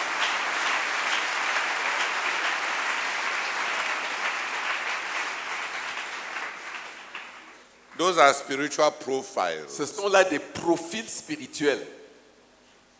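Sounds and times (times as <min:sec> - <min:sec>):
audience clapping: 0:00.0 - 0:08.2
speech: 0:08.0 - 0:12.0.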